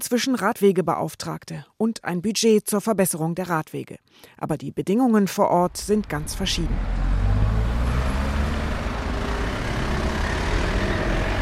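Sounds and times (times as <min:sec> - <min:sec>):
speech: 0:00.0 - 0:07.2
dense heavy road traffic rumbling: 0:05.6 - 0:11.4
heavier trucks or buses passing: 0:05.6 - 0:11.4.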